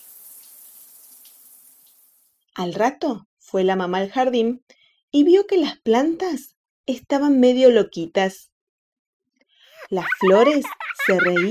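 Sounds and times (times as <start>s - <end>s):
water pouring from a watering can: 0.0s - 2.4s
speech: 2.6s - 8.5s, 9.9s - 11.4s
laughter: 9.8s - 11.4s.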